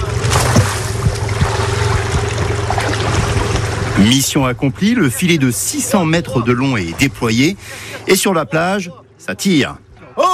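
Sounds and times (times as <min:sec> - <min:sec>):
soft irregular thumps and splashes of fishing net paid out into sea: 0:00.0 - 0:04.6
constant rushing water: 0:00.0 - 0:08.4
steady boat engine drone: 0:00.0 - 0:10.3
speech: 0:04.0 - 0:10.3.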